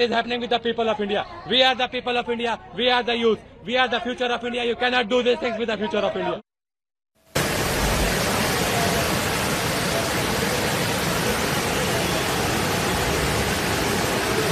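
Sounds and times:
speech: 0.0s - 6.5s
rushing floodwater pouring through a city street: 7.4s - 14.5s.

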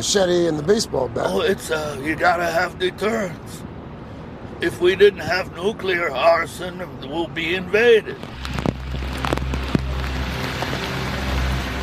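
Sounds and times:
speech: 0.0s - 3.7s, 4.6s - 8.5s
low rumble: 8.1s - 11.8s
steady rain falling on pavement: 8.2s - 11.8s.

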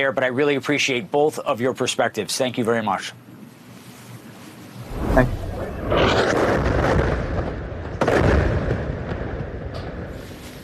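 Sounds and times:
speech: 0.0s - 3.3s, 5.2s - 5.4s
sharp blast: 4.9s - 7.7s
powerful explosion ripping through a building: 4.9s - 9.5s.

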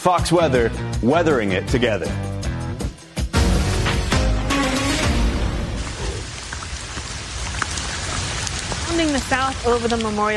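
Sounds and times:
speech: 0.0s - 2.3s, 8.9s - 10.3s
tropical downpour of heavy rain: 3.4s - 10.3s
sharper splashes of rain: 5.1s - 10.3s.

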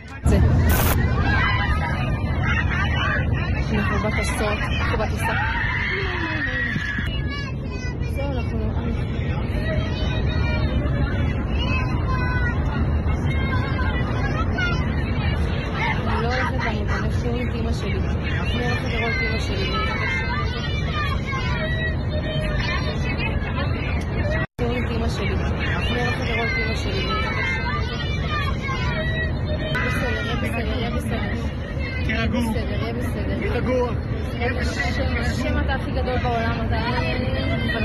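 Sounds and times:
loud steady airplane engine roar: 0.0s - 37.8s
passengers murmuring inside an airplane cabin: 0.0s - 37.8s
rushing air in an airplane cabin: 0.3s - 2.3s.

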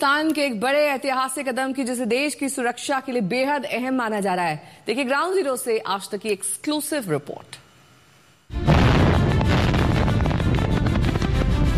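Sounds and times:
speech: 0.0s - 7.6s
breakthrough blasting explosion in the Zojila tunnel in India: 8.6s - 11.7s.

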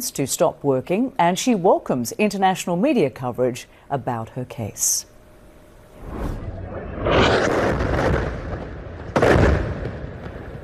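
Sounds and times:
speech: 0.0s - 5.1s
sharp blast: 6.0s - 9.9s
rumbling explosion ripping through a building: 6.0s - 10.6s
crackling debris: 6.7s - 10.6s.

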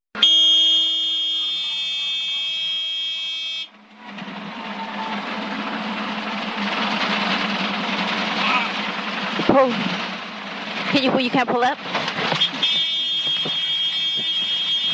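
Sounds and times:
single-engine helicopter low main rotor RPM electronic warning horn: 0.2s - 3.8s, 12.4s - 14.9s
single-engine helicopter rotor and engine roar: 3.7s - 14.9s
speech: 9.6s - 9.8s, 11.0s - 12.2s.

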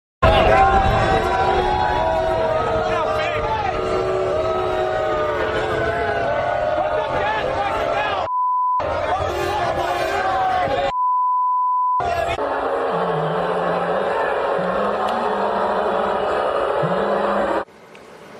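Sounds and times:
loud dense crowd roaring and chanting: 0.2s - 10.9s, 12.0s - 17.7s
steady censor-style beep: 8.3s - 8.8s, 10.9s - 12.0s.

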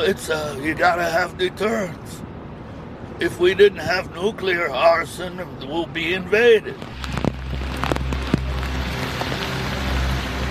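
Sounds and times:
speech: 0.0s - 2.2s, 3.2s - 7.1s
steady rain falling on a street: 6.8s - 10.4s.

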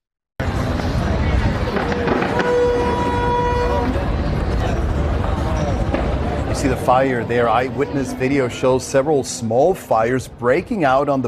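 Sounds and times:
fireworks display crackling and booming: 0.4s - 7.2s
dense noisy crowd murmur: 0.4s - 11.2s
brief horn-like toot: 2.2s - 4.1s
speech: 6.9s - 11.2s.

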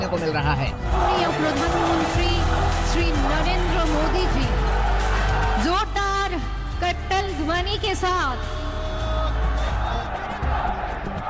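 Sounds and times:
political rally crowd cheering: 0.0s - 11.2s
speech: 0.1s - 4.7s, 5.6s - 6.4s, 7.2s - 8.6s
political rally crowd chanting slogans: 0.8s - 6.4s, 8.4s - 11.2s.

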